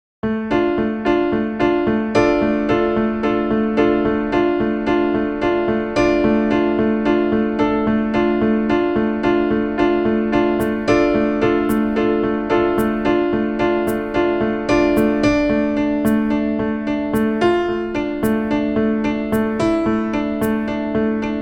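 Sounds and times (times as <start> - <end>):
piano: 0.2 - 21.4
drums: 10.6 - 11.0, 11.7 - 12.0, 12.8 - 13.1, 13.9 - 14.2, 15.0 - 15.3, 16.1 - 16.4, 17.2 - 17.4, 18.2 - 18.6, 19.3 - 19.6, 20.4 - 20.8.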